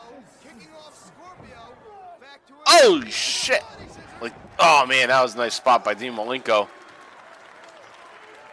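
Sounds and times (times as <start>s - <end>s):
speech: 0.6s - 6.8s
scattered cheers from a wrestling crowd: 2.7s - 3.6s, 4.6s - 8.5s
large crowd clapping at a wrestling match in a rec center: 5.3s - 8.5s.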